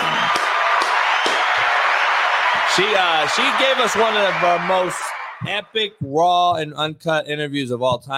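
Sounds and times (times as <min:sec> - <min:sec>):
group applauding: 0:00.0 - 0:05.9
speech: 0:02.8 - 0:08.1.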